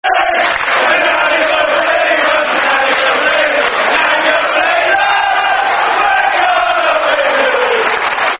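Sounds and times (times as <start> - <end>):
football crowd chanting: 0.0 - 8.3.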